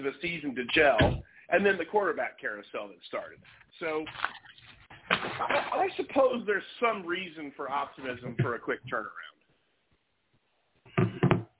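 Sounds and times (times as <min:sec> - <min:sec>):
speech: 0:00.0 - 0:09.4
delivery driver knocking on a door: 0:11.0 - 0:11.5.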